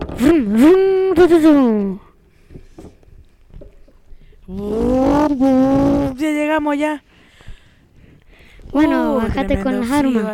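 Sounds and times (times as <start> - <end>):
speech: 0.2 - 2.0, 4.5 - 7.1, 8.7 - 10.3
voice imitating a car engine starting: 4.5 - 6.3.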